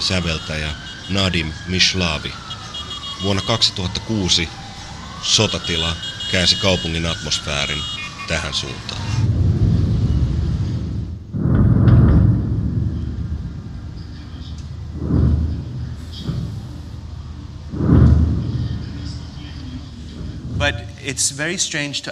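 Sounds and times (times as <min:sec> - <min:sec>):
city activity: 0:00.0 - 0:22.1
speech: 0:00.1 - 0:02.5, 0:03.2 - 0:04.6, 0:05.2 - 0:09.3, 0:21.1 - 0:22.1
steady low rumble of wartime city: 0:09.0 - 0:21.6
deep booming swells in wartime city: 0:09.1 - 0:21.6.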